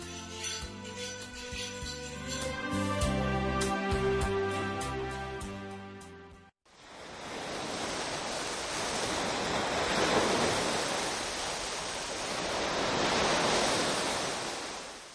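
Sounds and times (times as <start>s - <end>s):
gentle melodic music: 2.0s - 6.5s
sea waves breaking on shore: 6.7s - 15.1s.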